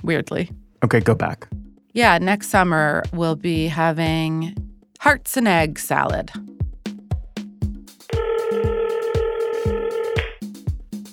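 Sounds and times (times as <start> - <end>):
speech: 0.0 - 6.5
thumping beat: 0.0 - 11.1
telephone ringing: 8.1 - 10.2.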